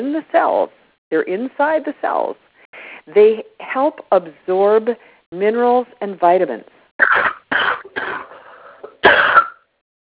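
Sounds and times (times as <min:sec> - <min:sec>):
speech: 0:00.0 - 0:02.5, 0:03.1 - 0:08.1
harsh coughs: 0:07.0 - 0:09.7.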